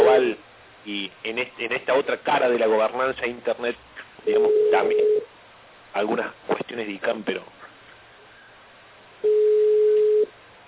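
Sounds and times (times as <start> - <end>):
speech: 1.3 - 5.3, 6.0 - 7.6
electronic telephone ring tone: 4.3 - 5.3, 9.2 - 10.3.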